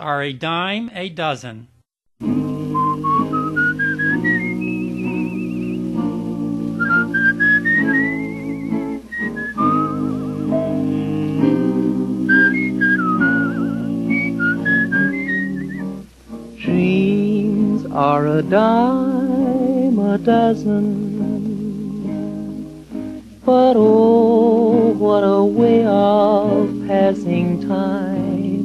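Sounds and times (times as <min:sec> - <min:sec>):
speech: 0:00.0 - 0:03.1, 0:18.1 - 0:19.1, 0:20.1 - 0:21.1, 0:23.4 - 0:28.1
steady harmonized musical accompaniment: 0:02.2 - 0:28.6
whistled melody with vibrato in a song: 0:02.5 - 0:16.0.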